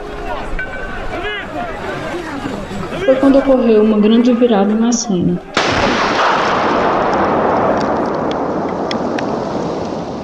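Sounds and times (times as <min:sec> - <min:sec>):
speech: 0:03.1 - 0:05.6
loud sustained roar of rumbling debris: 0:05.6 - 0:10.2
powerful bomb explosion in a bookstore: 0:05.6 - 0:10.2.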